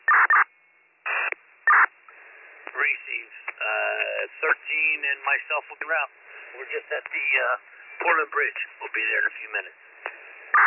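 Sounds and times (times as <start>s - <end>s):
fire dispatch alert tones over a radio channel: 0.0s - 0.5s
speech: 2.8s - 9.9s.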